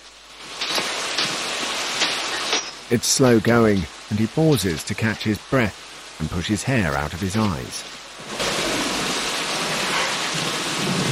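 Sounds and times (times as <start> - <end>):
heavy rain downpour in dense forest undergrowth: 0.0 - 11.0
speech: 2.9 - 8.0.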